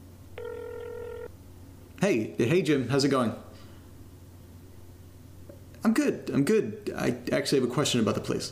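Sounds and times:
faint low hum on a phone line: 0.0s - 8.5s
phone ringback tone during a call to a landlord: 0.4s - 1.3s
speech: 2.0s - 3.5s, 5.9s - 8.5s.

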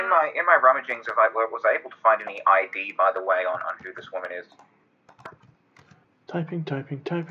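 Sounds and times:
speech: 0.1s - 5.4s, 6.3s - 7.2s
quiet quick computer keyboard typing: 0.8s - 1.3s, 2.1s - 6.0s.

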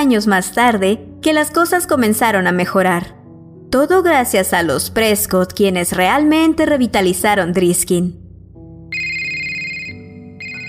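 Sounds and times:
speech: 0.0s - 8.2s
mobile phone ringtone playing a short electronic melody: 8.9s - 10.6s.

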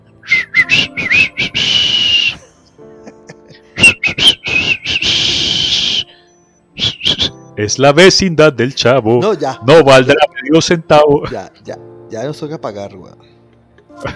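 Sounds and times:
person whistling a short tune: 0.2s - 2.5s, 3.8s - 7.6s
laughter: 2.4s - 3.6s
speech: 7.6s - 13.3s, 14.0s - 14.1s.

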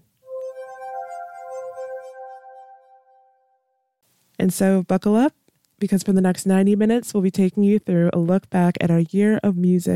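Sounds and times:
bright glassy chapter transition chime: 0.2s - 3.6s
speech: 4.4s - 9.9s.

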